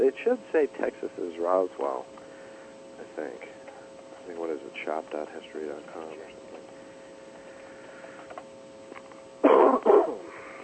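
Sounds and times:
speech: 0.0s - 2.2s, 3.0s - 3.6s, 4.3s - 6.4s
person coughing harshly: 9.4s - 10.3s.

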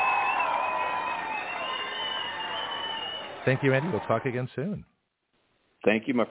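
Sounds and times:
high whistle-like tones: 0.0s - 3.7s
crowd applause and cheering: 0.0s - 4.7s
speech: 3.4s - 4.9s, 5.8s - 6.2s.

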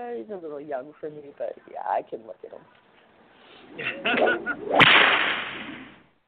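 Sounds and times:
speech: 0.2s - 2.8s, 3.7s - 5.7s
whip swishing through the air: 4.7s - 5.9s.

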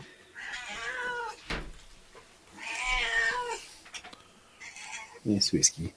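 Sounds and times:
cat meowing: 0.4s - 1.7s, 2.5s - 3.7s, 4.6s - 5.2s
thump: 1.4s - 1.9s
speech: 5.2s - 5.9s.

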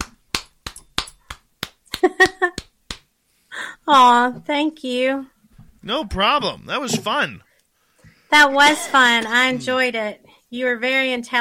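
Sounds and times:
hand claps applauding a guest: 0.0s - 3.1s
speech: 3.9s - 7.5s, 8.3s - 11.3s.

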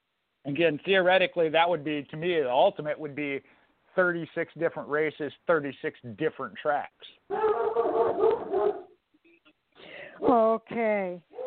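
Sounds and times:
speech: 0.4s - 8.8s, 10.2s - 11.4s
dog barking or whining: 7.3s - 9.0s.

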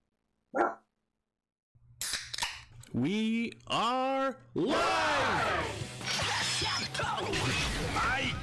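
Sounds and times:
dog barking: 0.5s - 0.9s
speech: 2.9s - 8.3s.

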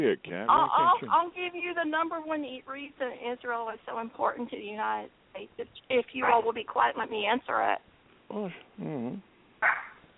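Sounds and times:
speech: 0.0s - 9.9s
dog barking and yelping: 6.2s - 6.5s, 9.6s - 10.0s.

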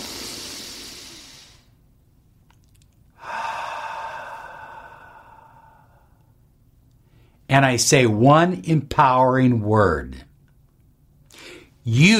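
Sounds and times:
deep breath drawn in through the nose: 0.0s - 1.8s, 3.2s - 6.2s
speech: 7.5s - 10.3s, 11.9s - 12.1s.

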